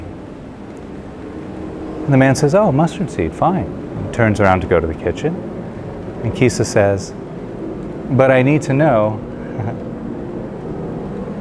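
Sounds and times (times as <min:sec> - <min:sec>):
airplane flying overhead: 0:00.0 - 0:11.4
speech: 0:02.1 - 0:05.5, 0:06.2 - 0:07.2, 0:08.1 - 0:09.9.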